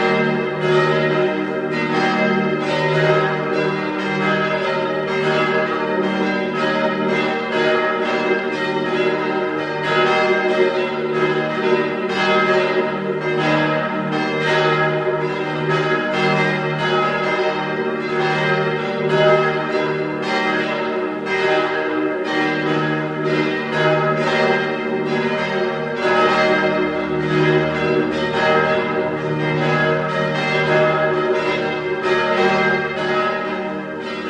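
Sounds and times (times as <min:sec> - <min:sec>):
parish church bells pealing at noon in Vienna's 16th district: 0:00.0 - 0:34.2.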